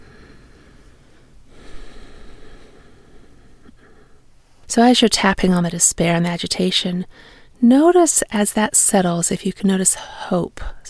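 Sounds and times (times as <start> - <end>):
gentle breath drawn during a calming tapping exercise: 0.0 - 4.3, 7.1 - 7.6
speech: 4.7 - 10.8.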